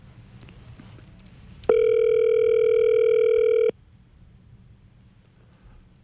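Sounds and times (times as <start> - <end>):
quiet hum: 0.0 - 6.0
long electronic phone line ringing tone: 1.7 - 3.7.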